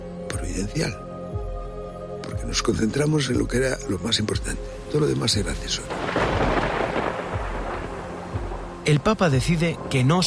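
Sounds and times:
speech: 0:00.6 - 0:01.1, 0:02.4 - 0:06.6, 0:08.8 - 0:10.2
heavy rain hissing in a thunderstorm: 0:04.5 - 0:10.2
deep rolling rumble of thunder: 0:05.9 - 0:10.2.

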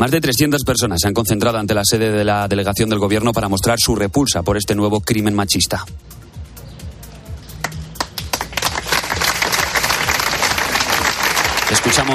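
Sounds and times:
speech: 0:00.0 - 0:06.2, 0:11.9 - 0:12.1
crowd applauding outdoors: 0:07.6 - 0:12.1.

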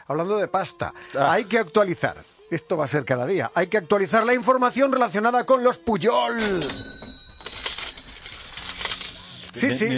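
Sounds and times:
speech: 0:00.1 - 0:07.0, 0:09.6 - 0:09.9
cash register ringing tone: 0:06.4 - 0:09.2
rattling metallic jingle of coins being handled: 0:06.4 - 0:09.2.

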